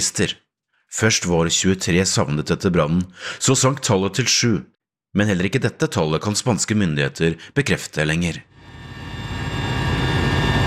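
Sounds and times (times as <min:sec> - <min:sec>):
speech: 0:00.0 - 0:08.5
helicopter flying over a forest fire in Spain: 0:08.6 - 0:10.6.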